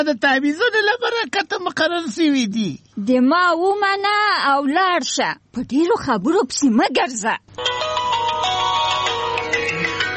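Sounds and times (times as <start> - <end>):
speech: 0.0 - 7.9
mobile phone ringtone with a bright melodic electronic tune: 7.6 - 10.1.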